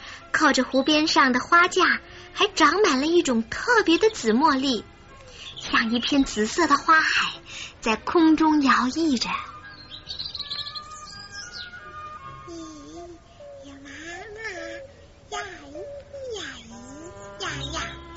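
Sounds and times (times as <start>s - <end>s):
speech: 0.4s - 4.9s, 5.6s - 9.5s
small bird chirping: 8.7s - 18.1s
person making sliding babbling sounds: 12.5s - 18.1s.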